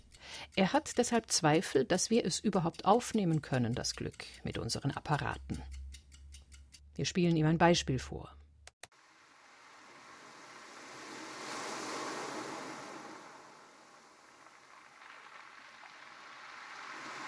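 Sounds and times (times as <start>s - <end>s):
speech: 0.6s - 5.8s, 7.0s - 8.4s
sea waves washing onto a beach: 8.9s - 17.2s.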